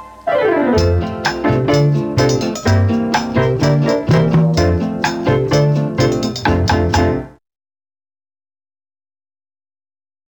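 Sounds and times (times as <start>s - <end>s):
romantic comedy space age pop cocktail music: 0.4s - 7.3s.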